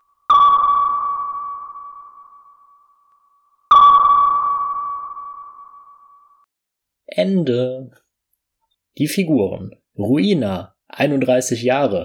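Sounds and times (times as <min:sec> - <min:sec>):
submarine sonar pings: 0:00.0 - 0:06.5
speech: 0:07.2 - 0:08.0, 0:09.0 - 0:12.0.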